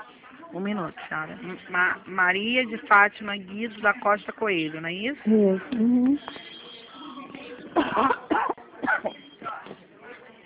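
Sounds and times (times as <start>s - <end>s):
speech: 0.5s - 6.5s, 7.8s - 8.3s
person coughing over a phone line: 7.8s - 9.2s.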